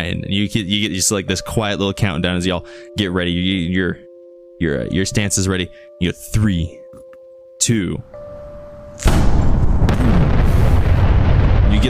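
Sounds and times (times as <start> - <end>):
speech: 0.0 - 6.8, 7.6 - 8.2
explosion of vaporized gasoline in a vat: 9.0 - 11.8.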